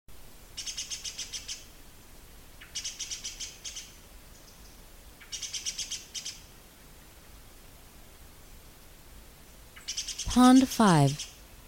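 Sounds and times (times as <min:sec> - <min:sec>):
disturbed great spotted woodpecker Dendrocopos major giving agitated alarm calls: 0:00.6 - 0:01.7, 0:02.6 - 0:06.5, 0:09.7 - 0:10.3, 0:11.1 - 0:11.4
speech: 0:10.3 - 0:11.3.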